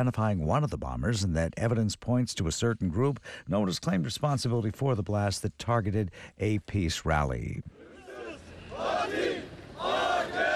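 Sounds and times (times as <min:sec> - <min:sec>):
speech: 0:00.0 - 0:07.8
large crowd chanting in unison outdoors: 0:07.8 - 0:10.5.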